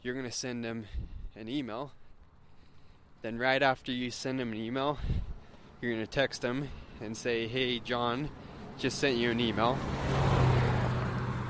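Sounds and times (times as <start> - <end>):
speech: 0.0 - 2.0, 3.2 - 10.2
car passing by with low engine rumble and road noise: 8.2 - 11.4.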